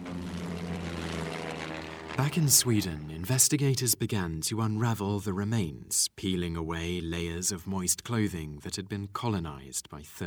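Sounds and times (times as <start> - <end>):
propeller aeroplane engine droning overhead in a flyover: 0.0 - 3.0
speech: 2.2 - 10.2.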